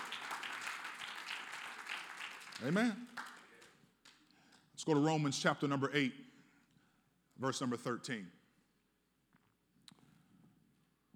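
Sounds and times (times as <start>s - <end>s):
audience clapping: 0.0s - 4.3s
speech: 2.6s - 3.2s, 4.8s - 6.3s, 7.4s - 8.4s.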